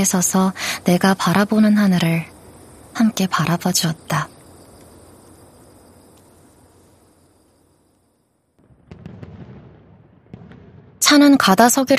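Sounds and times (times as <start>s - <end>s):
speech: 0.0s - 2.3s, 3.0s - 4.4s, 11.1s - 11.9s
steady hiss: 0.0s - 11.9s
fireworks exploding with sharp bangs and crackling pops: 8.6s - 11.9s.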